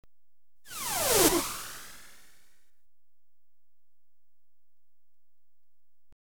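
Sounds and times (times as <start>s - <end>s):
electronically generated missile ricochet moving right to left: 0.7s - 2.4s.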